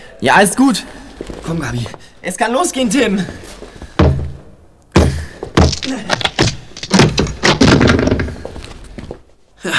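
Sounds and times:
speech: 0.2 - 3.5, 5.9 - 6.2
heavy thuds and bangs of a door being forced: 4.0 - 8.6
door being forced open: 5.0 - 8.6
wood of a door cracking and rattling: 5.0 - 9.2.

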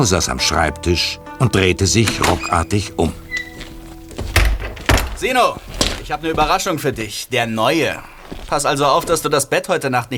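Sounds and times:
speech: 0.0 - 3.2, 5.2 - 10.1
door pushed open with a creak: 2.0 - 9.4
heavy wooden thunks of the door knocking: 2.1 - 9.7.

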